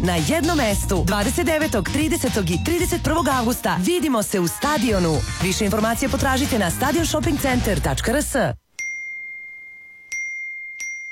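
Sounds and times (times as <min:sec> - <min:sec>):
speech: 0:00.0 - 0:08.6
phone notification dings: 0:08.8 - 0:11.1.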